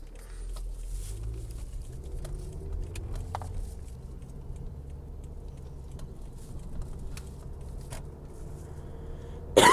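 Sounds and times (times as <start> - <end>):
rustling: 0.0 - 8.9
low car-interior rumble: 0.0 - 9.7
person coughing after smoking a blunt: 9.6 - 9.7.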